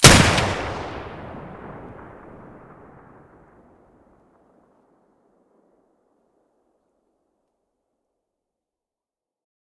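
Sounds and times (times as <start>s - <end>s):
Benelli gun muzzle blast: 0.0s - 2.6s.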